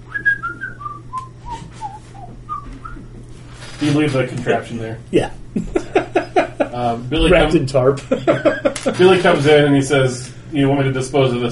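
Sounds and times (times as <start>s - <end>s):
low steady hum: 0.0s - 11.5s
person whistling a short descending tune: 0.1s - 3.0s
speech: 3.8s - 11.5s
laughter: 5.5s - 7.0s, 8.0s - 9.3s.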